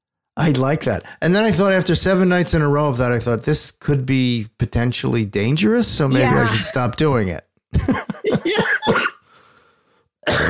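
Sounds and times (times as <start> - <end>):
speech: 0.4 - 9.1
laughter: 6.1 - 7.2, 7.8 - 9.3
rough coughs: 6.2 - 6.9, 8.3 - 9.3, 10.2 - 10.4
throat-clearing bursts: 10.3 - 10.4.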